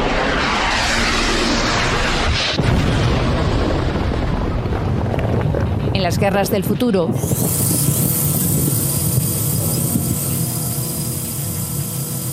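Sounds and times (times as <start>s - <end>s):
military drones flying: 0.0s - 4.3s, 7.0s - 12.3s
missile explosions: 0.0s - 10.7s
speech: 6.0s - 7.8s.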